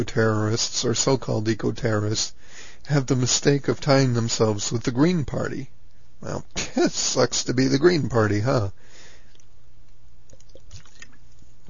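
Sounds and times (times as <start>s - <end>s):
speech: 0.0s - 8.8s
person sipping and swallowing root beer flavored water: 10.3s - 11.4s
faint liquid squishing in the mouth: 10.3s - 11.5s.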